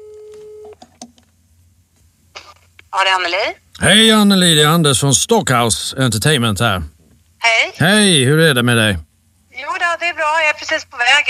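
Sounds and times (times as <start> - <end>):
ringing tone of an outgoing telephone call: 0.0 - 0.7
speech: 2.9 - 11.2.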